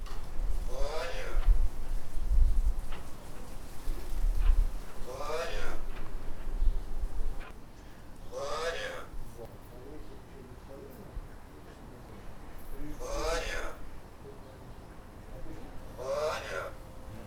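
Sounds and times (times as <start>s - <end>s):
Corvus corax calling: 0.6s - 2.0s, 3.8s - 7.6s, 8.2s - 9.4s, 12.8s - 14.1s, 15.4s - 17.2s.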